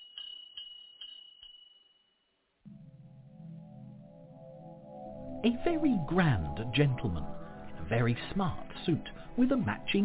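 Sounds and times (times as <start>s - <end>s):
small shop door bell tinkling: 0.0s - 2.2s
low sustained musical tone: 2.7s - 10.0s
speech: 5.4s - 10.0s.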